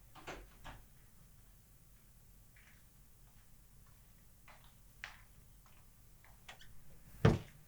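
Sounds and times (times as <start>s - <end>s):
door shutting thud: 0.2s - 0.8s, 7.2s - 7.6s.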